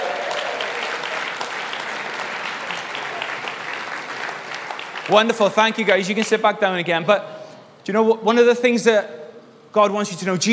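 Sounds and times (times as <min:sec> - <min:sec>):
crowd clapping in sustained applause: 0:00.0 - 0:06.4
speech: 0:05.1 - 0:10.5.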